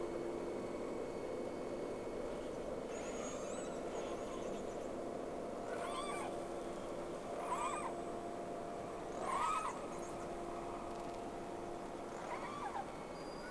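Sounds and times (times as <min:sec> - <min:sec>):
steady background hum and hiss: 0:00.0 - 0:13.4
two whale tonal calls recorded from a vessel: 0:02.9 - 0:04.9, 0:05.6 - 0:06.4, 0:07.3 - 0:08.0, 0:09.1 - 0:10.2, 0:12.1 - 0:13.4.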